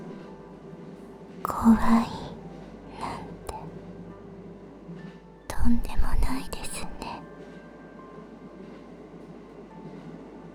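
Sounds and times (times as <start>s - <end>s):
moving train rumbling heard from inside a carriage: 0.0s - 10.5s
speech: 1.4s - 2.2s.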